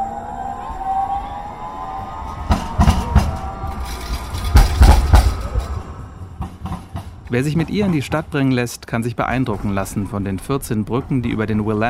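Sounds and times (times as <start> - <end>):
streetcar tram motor whine on rails: 0.0 - 7.7
streetcar tram wheels clacking over rail joints: 2.5 - 11.8
speech: 7.3 - 11.8.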